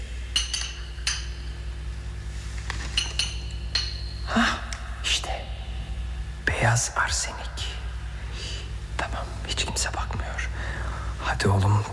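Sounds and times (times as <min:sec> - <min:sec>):
low steady hum: 0:00.0 - 0:11.9
glass bottles clinking in a cabinet: 0:00.3 - 0:01.6, 0:02.8 - 0:04.4
speech: 0:06.6 - 0:07.5, 0:09.8 - 0:10.5, 0:11.3 - 0:11.9.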